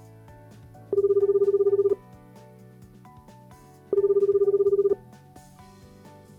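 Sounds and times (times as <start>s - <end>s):
phone's outgoing ringback tone while calling an actor: 1.0s - 2.0s, 3.9s - 5.0s.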